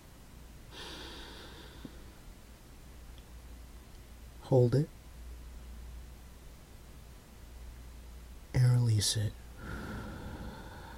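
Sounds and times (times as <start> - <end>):
deep inhaled breath at the start of a breathing exercise: 0.7 - 2.1, 9.6 - 10.9
speech: 4.5 - 5.0, 9.0 - 9.4.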